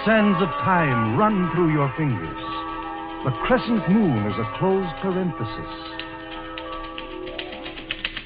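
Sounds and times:
speech: 0.0 - 2.4, 3.2 - 6.0
sustained musical tones: 0.0 - 8.2
typewriter keys striking: 6.0 - 8.2.

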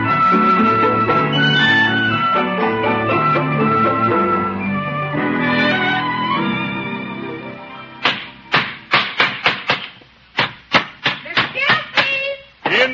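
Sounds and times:
low tonal sound: 0.2 - 8.0
hammering on wood: 8.0 - 12.8.

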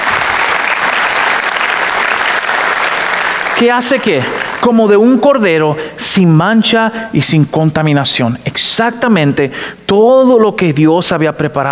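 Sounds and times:
congregation applauding: 0.0 - 5.2
speech: 3.6 - 11.7.

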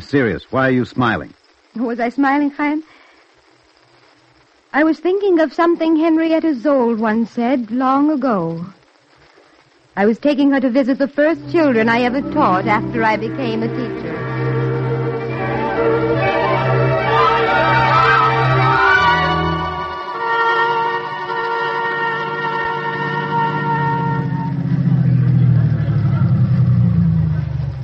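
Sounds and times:
speech: 0.0 - 2.9, 4.7 - 8.8, 10.0 - 14.6
light tonal background: 10.5 - 26.8
car engine humming as the vehicle slows to a stop: 11.2 - 27.8.

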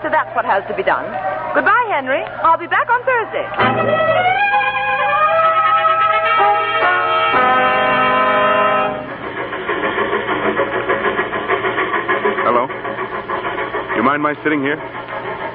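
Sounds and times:
speech: 0.0 - 5.2, 14.0 - 15.0
train rolling along the tracks: 1.6 - 15.5
train horn: 3.6 - 9.2.

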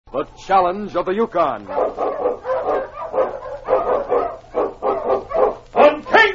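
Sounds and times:
speech: 0.1 - 2.8
huskies barking and yelping: 1.6 - 6.3.

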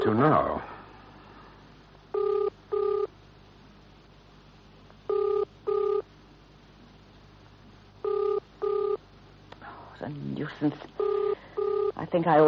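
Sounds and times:
speech: 0.0 - 0.8, 10.6 - 10.9, 12.1 - 12.4
faint hiss: 0.0 - 12.4
telephone ringing tone heard through the earpiece: 2.1 - 3.1, 5.1 - 6.1, 8.0 - 9.0, 11.0 - 12.4.

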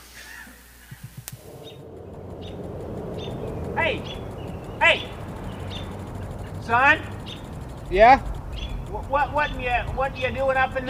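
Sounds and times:
hissy outdoor background: 0.0 - 10.8
soft low thumps: 0.9 - 10.8
faint bird chirps high up in a tree: 1.5 - 9.7
speech: 6.7 - 7.1, 7.9 - 8.3, 9.1 - 10.8.

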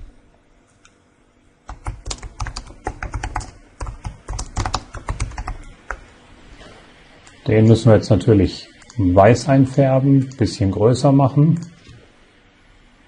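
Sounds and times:
typing text on a computer keyboard: 1.7 - 6.0
speech: 7.4 - 11.7.

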